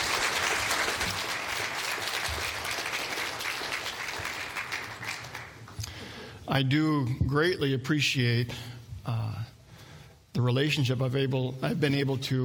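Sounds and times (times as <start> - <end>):
crowd applauding: 0.0 - 5.8
speech: 6.5 - 9.5, 10.4 - 12.4.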